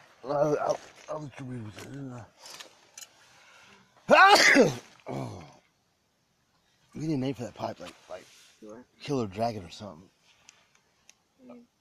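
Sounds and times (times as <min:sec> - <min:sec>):
speech: 0:00.2 - 0:02.7, 0:04.2 - 0:05.6, 0:07.0 - 0:10.2, 0:11.4 - 0:11.7
loud sneeze: 0:04.1 - 0:05.4.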